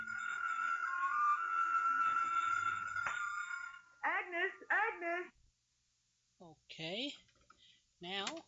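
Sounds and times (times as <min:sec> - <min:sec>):
telephone ringing in warbling bursts in an apartment living room: 0:00.0 - 0:04.0
speech: 0:06.8 - 0:07.3, 0:08.0 - 0:08.4.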